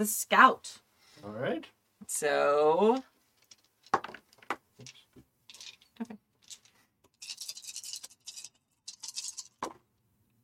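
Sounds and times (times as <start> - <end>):
speech: 0.0 - 3.1, 4.8 - 5.0, 6.0 - 6.2
handful of dice rattling and clattering: 2.9 - 9.8.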